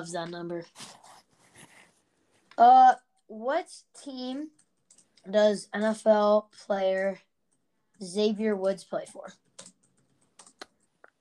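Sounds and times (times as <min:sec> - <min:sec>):
speech: 0:00.0 - 0:01.0, 0:02.6 - 0:04.6, 0:05.2 - 0:07.3, 0:08.0 - 0:09.4
aggressive typing on a computer keyboard: 0:04.5 - 0:05.2, 0:09.4 - 0:10.9.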